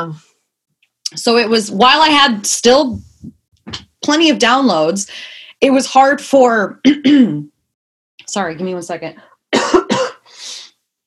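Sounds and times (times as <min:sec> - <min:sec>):
speech: 0:00.0 - 0:00.3, 0:01.1 - 0:03.1, 0:03.7 - 0:07.5, 0:08.2 - 0:09.3
person coughing: 0:09.6 - 0:10.3.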